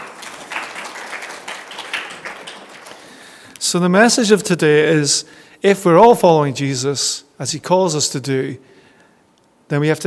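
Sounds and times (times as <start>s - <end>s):
audience applause: 0.0s - 3.4s
speech: 3.7s - 8.8s, 9.7s - 10.0s.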